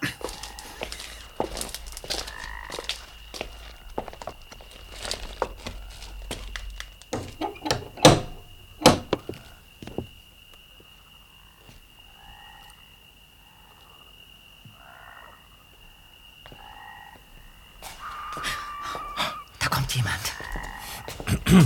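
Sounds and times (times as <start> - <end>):
footsteps shuffling: 0.0 - 10.6, 17.8 - 19.2, 19.9 - 21.6
sharp solid knocks on the wooden door of a house: 7.1 - 9.4.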